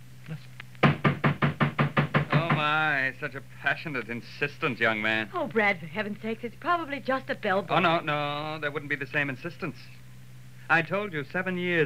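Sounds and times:
speech: 0.3s - 0.6s, 2.6s - 10.0s, 10.7s - 11.8s
rapid insistent knocking on a door: 0.8s - 2.8s.

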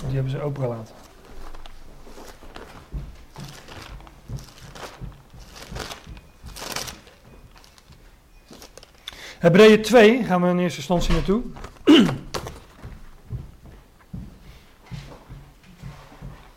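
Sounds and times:
footsteps going upstairs: 0.0s - 8.6s, 11.0s - 16.5s
speech: 0.1s - 1.1s, 9.4s - 12.2s
door shutting: 10.9s - 12.6s.

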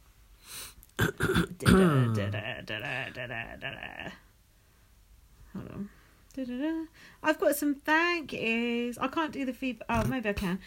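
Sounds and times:
person coughing: 1.0s - 2.4s
speech: 1.4s - 4.2s, 5.8s - 10.6s
strained voiced sound: 1.6s - 4.2s.

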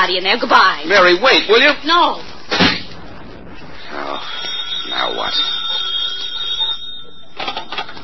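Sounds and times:
speech: 0.0s - 2.3s, 4.2s - 5.6s
telephone bell ringing: 4.3s - 8.0s.

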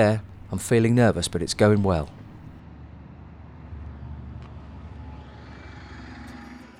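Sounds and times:
speech: 0.0s - 2.2s
bus engine rumbling: 0.0s - 2.6s
faint rattles in a bus: 0.0s - 2.6s
road noise: 0.0s - 2.6s.

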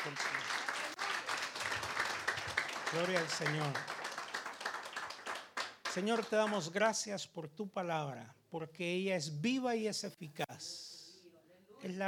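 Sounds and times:
speech: 0.0s - 0.4s, 2.9s - 4.0s, 6.0s - 10.9s, 11.8s - 12.0s
audience applause during worship: 0.0s - 6.6s.

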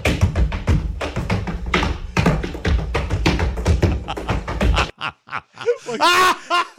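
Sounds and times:
feet slamming on a ceiling: 0.0s - 4.9s
person giggling: 3.8s - 6.7s.

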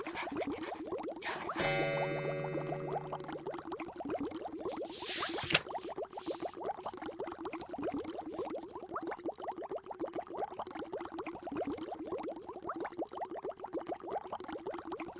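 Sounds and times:
potion bubbling in a flask: 0.0s - 1.3s, 3.0s - 15.1s
bright tonal chime: 1.3s - 3.7s.

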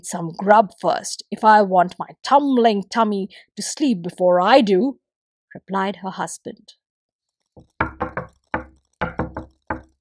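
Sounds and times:
speech: 0.0s - 6.8s
man knocking firmly on a wooden house door: 7.6s - 9.9s.

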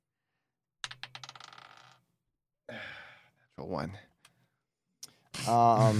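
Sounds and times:
d20 die clattering across a hard tabletop: 0.8s - 2.0s
speech: 3.6s - 4.1s, 5.5s - 5.9s.

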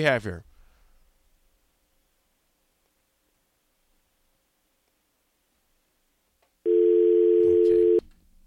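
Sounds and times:
speech: 0.0s - 0.5s
telephone busy signal on a failed call: 6.7s - 8.0s.

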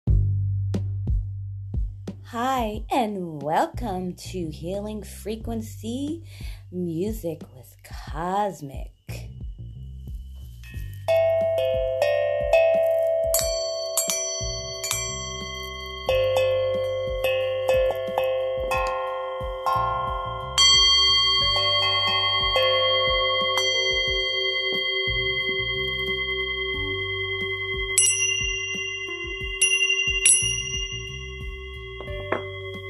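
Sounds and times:
soft low chakra drum beats: 0.1s - 13.8s, 16.2s - 24.4s, 27.8s - 32.8s
speech: 2.3s - 9.0s
Tibetan dragon tingsha bells chiming: 9.6s - 32.8s
Tibetan singing bowl ringing: 9.8s - 32.8s.

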